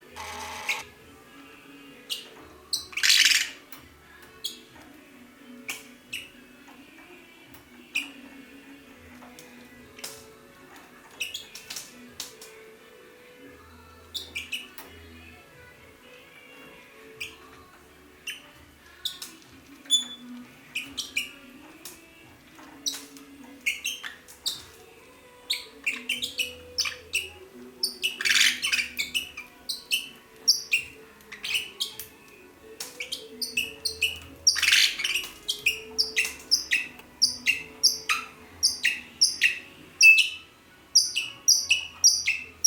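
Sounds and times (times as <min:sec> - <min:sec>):
singing parrots Psephotus haematonotus: 0:00.0 - 0:00.9, 0:01.9 - 0:04.8, 0:05.4 - 0:06.8, 0:07.8 - 0:15.8, 0:16.4 - 0:42.6.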